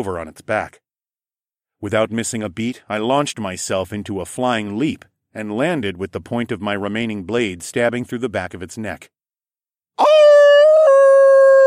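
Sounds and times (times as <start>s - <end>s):
speech: 0.0s - 0.8s, 1.8s - 9.2s
animalistic howl: 10.0s - 11.6s.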